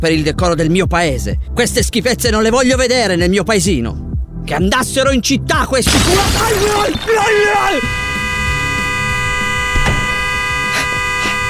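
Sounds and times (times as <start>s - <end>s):
speech: 0.0s - 8.0s
car horn blaring, set off by a person's head resting on it: 5.9s - 11.4s.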